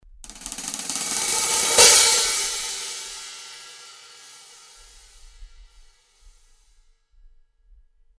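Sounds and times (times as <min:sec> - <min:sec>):
cymbal crescendo from closed to open: 0:00.3 - 0:06.5.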